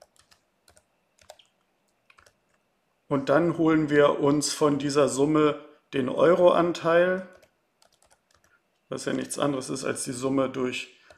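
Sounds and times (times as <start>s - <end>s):
typing code on a computer keyboard: 0.0s - 2.6s, 7.3s - 9.4s
speech: 3.1s - 7.4s, 8.9s - 11.0s.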